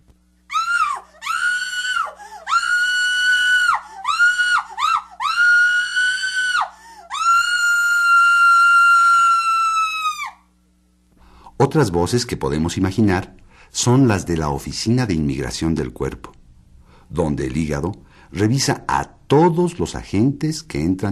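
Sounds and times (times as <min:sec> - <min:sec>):
woman screaming: 0:00.5 - 0:10.5
speech: 0:11.7 - 0:16.4, 0:17.1 - 0:21.1.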